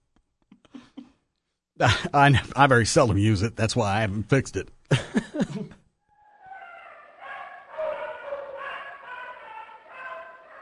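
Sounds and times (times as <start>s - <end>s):
speech: 1.8s - 5.0s
deaf cocker spaniel whiny barking: 6.3s - 10.6s.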